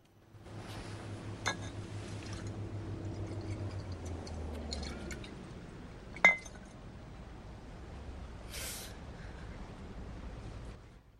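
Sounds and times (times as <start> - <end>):
steady low rumble on the embankment near Tower Bridge: 0.0 - 11.1
glass vodka bottle clinking as a man swigs from it on an embankment bench: 1.4 - 2.5, 6.2 - 6.7.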